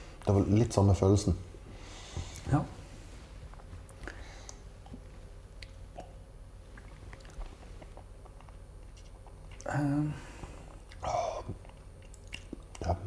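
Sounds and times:
speech: 0:00.3 - 0:01.5, 0:02.5 - 0:02.8
chewing crunchy burnt bread crusts: 0:03.3 - 0:13.0.

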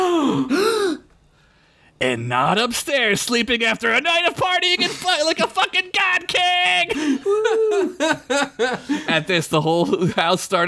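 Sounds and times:
person giving a drawn-out startled gasp: 0:00.0 - 0:02.0, 0:06.9 - 0:07.4
speech: 0:02.0 - 0:10.6
laughter: 0:06.9 - 0:10.3.

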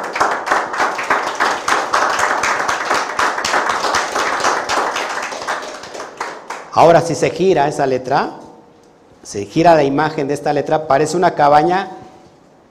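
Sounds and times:
audience clapping: 0:00.0 - 0:07.0
speech: 0:06.8 - 0:08.4, 0:09.2 - 0:12.0.

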